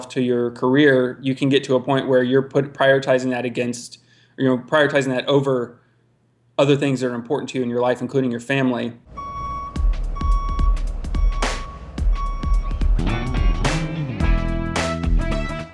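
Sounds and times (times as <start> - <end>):
speech: 0.0 - 5.8, 6.6 - 9.2
dump truck reversing alarm beeping: 9.1 - 12.9
dump truck engine rumbling: 9.1 - 15.6.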